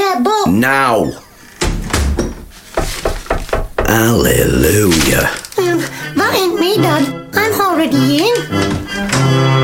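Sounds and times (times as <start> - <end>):
speech: 0.2 - 1.3, 3.9 - 9.6
back door slammed shut hard: 1.6 - 4.1
heavy knocks and rattles of a back door: 1.6 - 5.4.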